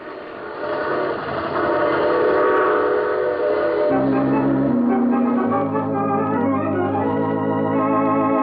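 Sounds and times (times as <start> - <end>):
train rumbling on rails: 0.0 - 6.4
sustained whistle-like tones shifting in pitch: 0.6 - 8.3.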